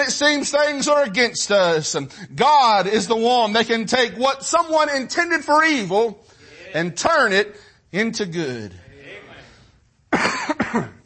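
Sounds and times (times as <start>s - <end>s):
speech: 0.0s - 8.8s, 10.2s - 11.0s
person coughing: 10.1s - 11.0s.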